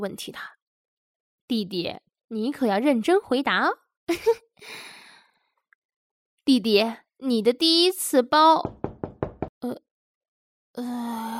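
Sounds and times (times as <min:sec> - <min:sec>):
speech: 0:00.0 - 0:00.6, 0:01.5 - 0:05.0, 0:06.4 - 0:08.8, 0:09.6 - 0:09.9, 0:10.8 - 0:11.3
firm knocking on a door: 0:08.6 - 0:09.6.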